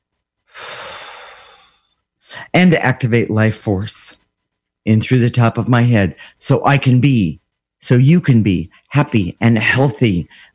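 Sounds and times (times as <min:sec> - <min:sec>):
deep breath in during a guided breathing exercise: 0:00.5 - 0:02.5
speech: 0:02.5 - 0:04.2, 0:04.8 - 0:10.5.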